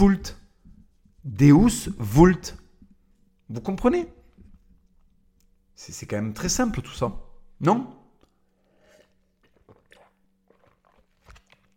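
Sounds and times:
speech: 0.0s - 0.4s, 1.2s - 2.6s, 3.5s - 4.2s, 5.8s - 8.0s
person gulping sips of a drink with wet swallows: 8.2s - 11.7s
small mouth smacks: 8.2s - 11.7s.

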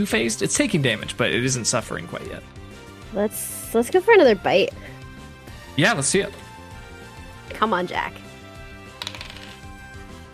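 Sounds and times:
speech: 0.0s - 4.9s, 5.8s - 6.4s, 7.5s - 8.2s
dice clattering across a hard tabletop: 8.9s - 9.8s.

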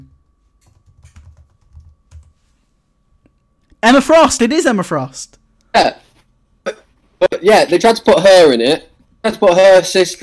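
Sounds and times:
typing a search on a computer keyboard: 0.6s - 2.3s
speech: 3.8s - 6.0s, 7.4s - 10.2s.

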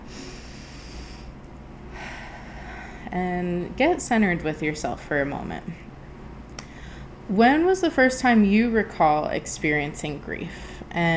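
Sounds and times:
slow deep breath: 0.0s - 3.1s, 6.6s - 7.2s
speech: 3.1s - 5.9s, 7.3s - 11.1s.

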